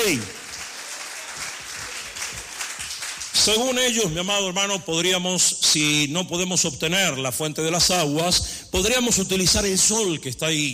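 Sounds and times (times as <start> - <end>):
speech: 0.0 - 0.4, 3.4 - 10.7
congregation applauding during a worship service: 0.0 - 4.2.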